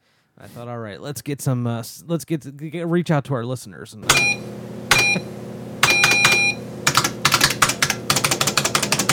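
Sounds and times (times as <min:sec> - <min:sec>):
speech: 0:00.4 - 0:04.6
short electronic beeps: 0:04.1 - 0:06.6
loud typing on the keyboard of an old library computer: 0:05.8 - 0:09.1.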